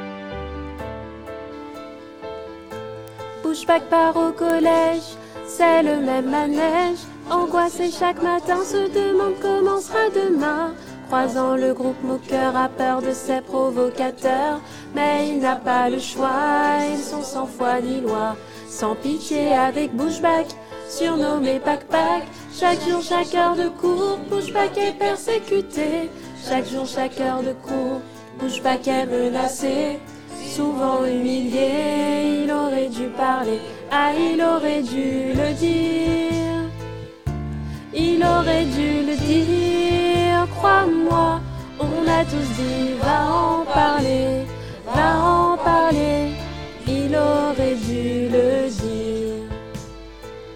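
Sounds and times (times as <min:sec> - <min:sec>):
choir singing: 0:03.4 - 0:36.8, 0:37.9 - 0:49.6.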